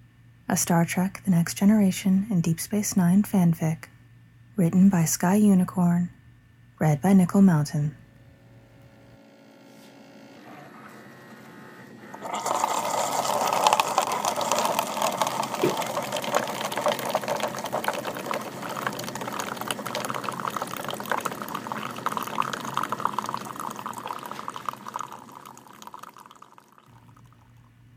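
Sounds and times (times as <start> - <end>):
faint mechanical hum: 0.0 - 27.9
speech: 0.5 - 3.9, 4.6 - 6.2, 6.8 - 8.0
water running through an espresso machine: 12.0 - 27.7.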